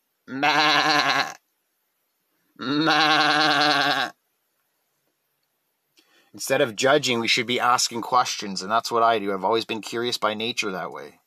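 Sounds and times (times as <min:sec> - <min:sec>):
speech: 0:00.3 - 0:01.1, 0:06.4 - 0:11.2
sheep bleating: 0:00.3 - 0:01.4, 0:02.6 - 0:04.2.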